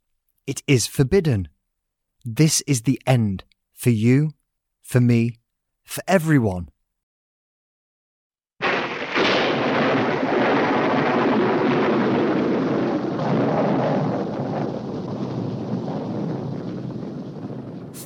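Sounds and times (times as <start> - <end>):
speech: 0.5 - 1.6, 2.2 - 6.7
thunder crash from a lightning strike: 8.6 - 18.0.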